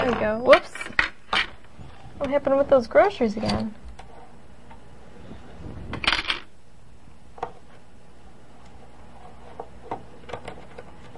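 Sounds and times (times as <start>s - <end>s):
speech: 0.0s - 0.9s, 2.2s - 3.8s
coins clattering into a coin machine: 6.0s - 6.5s.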